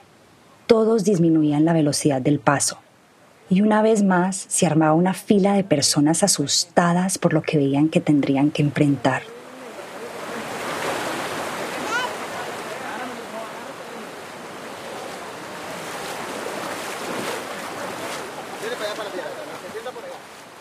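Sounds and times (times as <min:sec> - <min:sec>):
speech: 0:00.7 - 0:02.8, 0:03.5 - 0:09.4
river water rushing and splashing as a human chain of men wades across in the jungle: 0:09.0 - 0:20.5.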